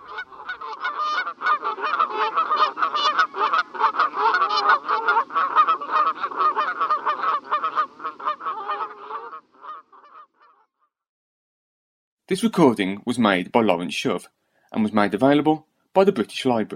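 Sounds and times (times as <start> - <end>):
flock of Canada geese honking: 0.0 - 10.7
speech: 12.3 - 16.7.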